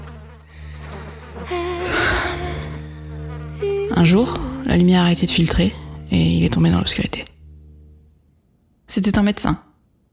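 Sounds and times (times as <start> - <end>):
swarm of many flies buzzing: 0.0 - 6.7
speech: 4.0 - 7.3, 8.9 - 9.7.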